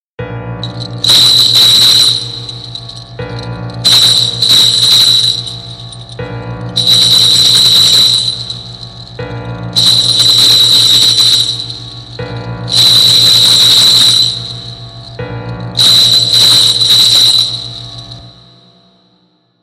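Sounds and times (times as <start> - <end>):
Japanese-style horror music: 0.2 - 19.1.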